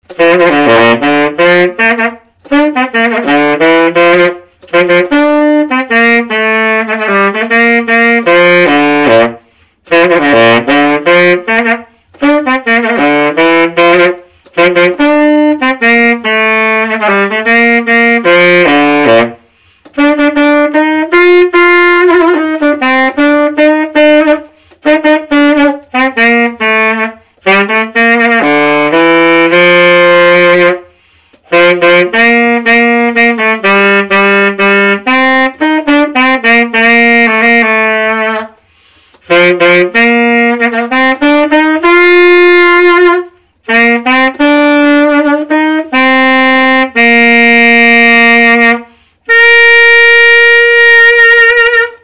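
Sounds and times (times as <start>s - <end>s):
Conn Wurlitzer silver tenor saxophone playing: 0.0s - 52.0s.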